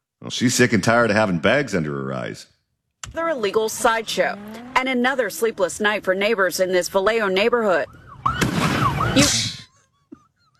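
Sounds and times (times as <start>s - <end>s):
speech: 0.3s - 8.0s, 9.2s - 9.5s
firework exploding near a patrol car at an illegal street sideshow: 8.2s - 9.2s.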